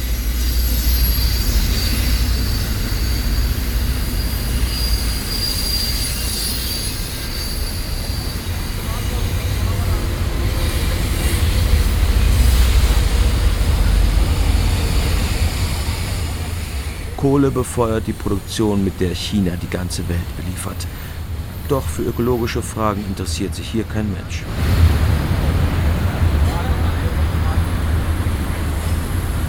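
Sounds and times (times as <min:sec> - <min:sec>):
high thin squealing of train wheels on rails: 0:00.0 - 0:23.6, 0:25.5 - 0:29.4
long freight train of coal-laden wagons passing: 0:00.0 - 0:29.4
speech: 0:17.3 - 0:24.9.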